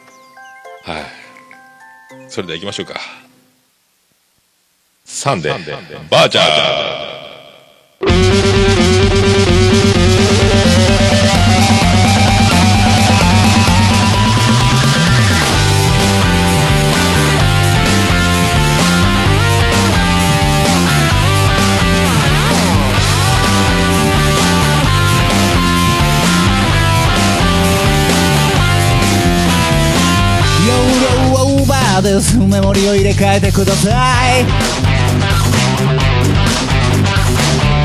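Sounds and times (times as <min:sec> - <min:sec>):
speech: 0:00.8 - 0:01.2, 0:02.1 - 0:03.2, 0:05.2 - 0:07.1, 0:32.1 - 0:35.6
song with dense layered instruments and sustained chords: 0:08.0 - 0:37.8.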